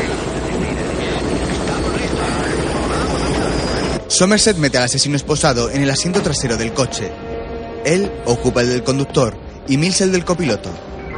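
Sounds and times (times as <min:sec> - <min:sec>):
helicopter engine and rotor roaring while preparing to take off: 0:00.0 - 0:08.5
speech: 0:04.2 - 0:07.2, 0:07.8 - 0:10.9.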